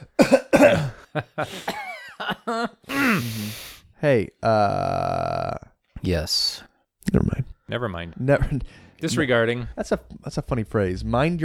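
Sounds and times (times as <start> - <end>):
person coughing: 0.0 - 2.0, 2.9 - 3.7
speech: 0.2 - 1.8, 4.0 - 5.0, 6.1 - 6.6, 7.2 - 11.4.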